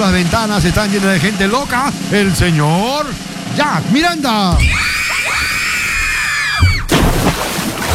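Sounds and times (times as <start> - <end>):
speech: 0.0 - 5.0
high-pitched screams with bending pitch: 4.5 - 6.9
loud shouting and commotion: 4.5 - 6.9.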